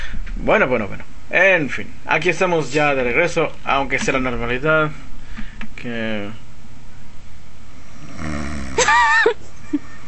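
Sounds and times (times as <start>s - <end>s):
speech: 0.4s - 5.1s, 5.8s - 6.4s
man snoring: 7.7s - 8.8s.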